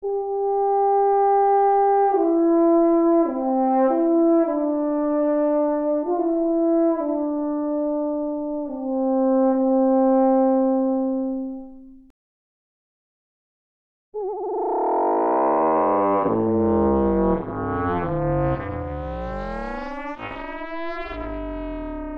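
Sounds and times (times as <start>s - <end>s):
FM synth horn: 0.0s - 12.1s, 14.2s - 22.1s.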